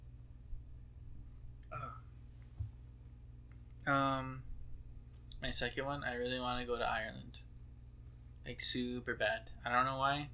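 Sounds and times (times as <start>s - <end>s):
low steady hum: 0.0s - 10.3s
person burping: 1.7s - 2.0s
speech: 3.9s - 4.5s, 5.4s - 7.4s, 8.4s - 10.3s.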